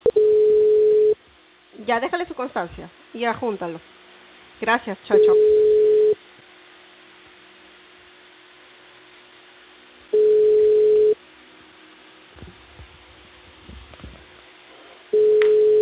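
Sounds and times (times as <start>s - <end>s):
telephone busy tone beeps after a dropped call: 0.0s - 1.2s, 5.2s - 6.2s, 10.2s - 11.2s, 15.2s - 15.8s
speech: 1.9s - 4.0s, 4.6s - 5.6s.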